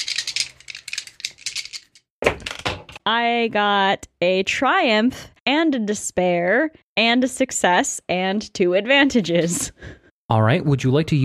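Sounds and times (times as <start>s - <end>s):
dice rattling: 0.0s - 2.6s
speech: 3.1s - 11.2s.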